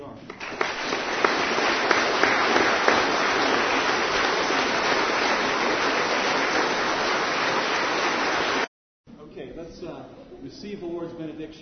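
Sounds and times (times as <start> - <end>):
crowd applauding: 0.3 - 8.7
speech: 10.7 - 11.5.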